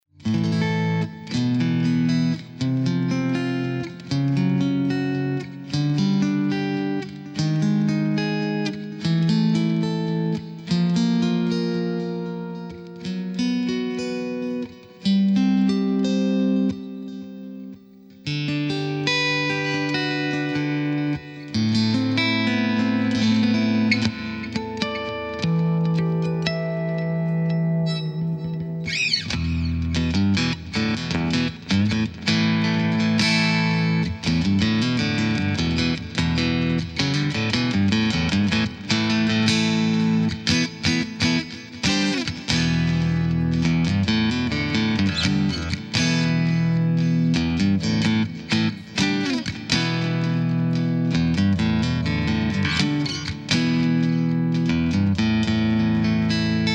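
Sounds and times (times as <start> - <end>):
clean metal guitar: 0.2 - 56.7.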